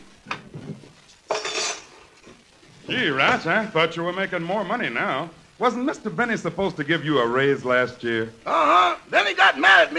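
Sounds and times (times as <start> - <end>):
metal cutlery clattering into a drawer: 1.3 - 1.9
speech: 2.9 - 9.9.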